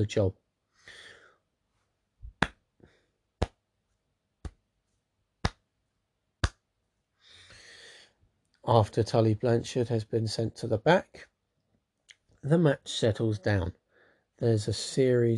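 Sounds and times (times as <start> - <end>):
speech: 0.0 - 0.4, 8.7 - 11.3, 12.4 - 13.8, 14.4 - 15.3
slow hand clapping: 2.3 - 2.6, 3.4 - 3.6, 4.4 - 4.7, 5.4 - 5.7, 6.4 - 6.7.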